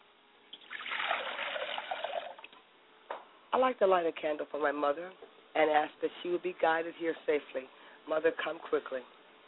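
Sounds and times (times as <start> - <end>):
water pouring into a glass: 0.5 - 2.5
speech: 3.5 - 9.2.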